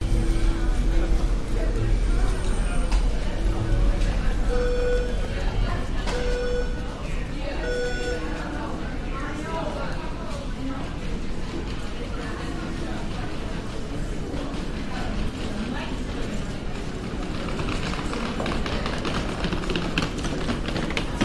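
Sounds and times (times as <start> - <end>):
trolley at waterfront station: 0.0 - 6.8, 11.5 - 21.2
walla of people at a seabus station: 0.4 - 21.2
beeping at a seabus station: 3.4 - 8.6.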